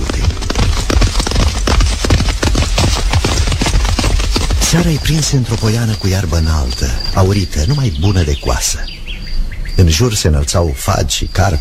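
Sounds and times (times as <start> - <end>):
hoofbeats of several horses at a brisk trot: 0.0 - 8.6
speech: 4.7 - 9.0, 9.8 - 11.6.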